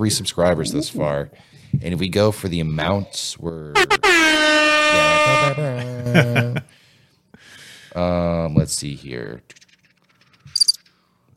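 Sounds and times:
speech: 0.0s - 6.8s, 7.9s - 9.7s
laughter: 5.3s - 6.7s
crickets chirping: 10.5s - 10.8s.

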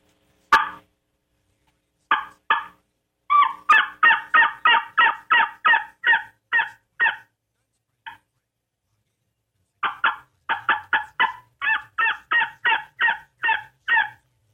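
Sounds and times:
tube turkey call blown in raspy loud yelps: 0.5s - 0.8s, 2.1s - 7.3s, 9.8s - 14.2s.

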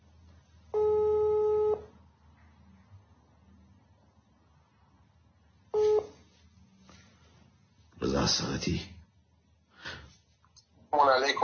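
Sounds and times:
outgoing phone call ringing tone via messaging app: 0.7s - 1.9s, 5.7s - 6.2s
speech: 8.3s - 9.0s, 11.2s - 11.4s.

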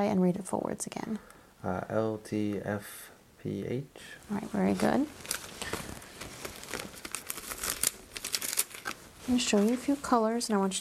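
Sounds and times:
speech: 0.0s - 5.9s, 9.3s - 10.7s
crinkling of plastic gloves and doctor's coat during a medical exam: 4.3s - 10.7s.

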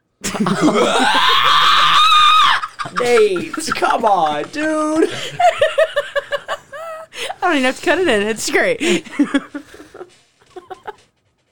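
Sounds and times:
laughter: 0.2s - 7.4s, 8.8s - 11.0s
speech: 0.3s - 1.3s, 3.0s - 5.9s, 7.4s - 9.6s
person letting out a long high-pitched scream: 0.6s - 3.1s.

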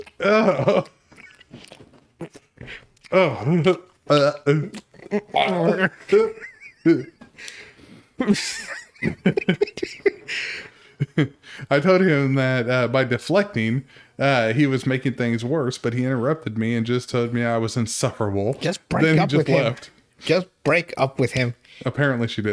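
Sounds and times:
speech: 0.0s - 1.0s, 3.1s - 7.1s, 8.3s - 8.8s, 11.7s - 22.5s
person making exaggerated wet chewing and munching noises: 0.0s - 6.2s
person grunting and snickering: 0.1s - 1.2s, 3.1s - 7.2s
laughter: 5.4s - 7.2s, 8.2s - 10.4s.

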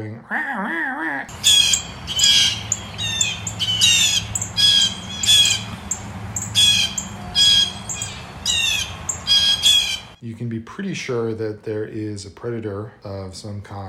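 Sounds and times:
speech: 0.0s - 1.6s, 10.2s - 13.8s
several blue jays calling with harsh squawks: 1.3s - 10.2s.

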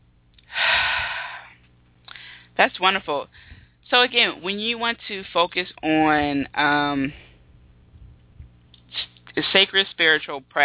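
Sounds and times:
single slow deep breath during calm spiritual practice: 0.5s - 2.5s
speech: 2.6s - 7.2s, 9.6s - 10.6s.

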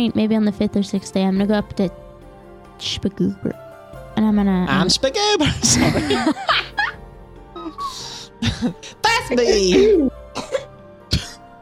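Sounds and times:
speech: 0.0s - 2.0s, 2.8s - 3.6s, 4.3s - 6.8s, 8.4s - 10.5s
laughter: 5.4s - 7.0s, 7.6s - 10.1s
short dry human coughs: 5.5s - 6.9s, 9.7s - 11.5s.

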